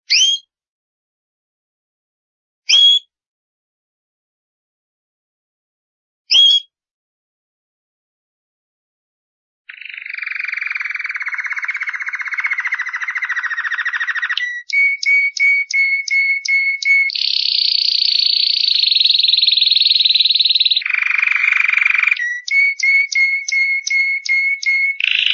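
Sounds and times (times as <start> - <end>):
canary singing trills and whistled notes: 0.1 - 0.4, 6.3 - 6.6, 9.7 - 25.3.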